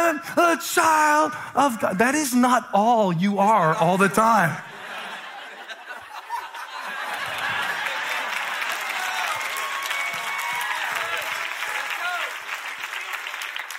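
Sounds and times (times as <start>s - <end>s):
speech: 0.2s - 4.7s
people laughing: 4.6s - 9.2s
church audience clapping: 6.9s - 13.7s.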